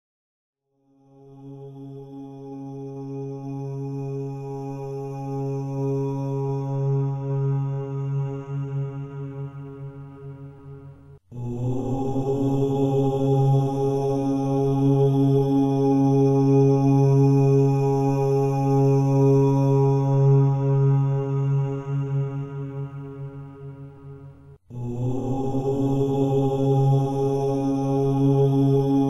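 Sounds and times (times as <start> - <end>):
mantra chanting: 0.9 - 29.0.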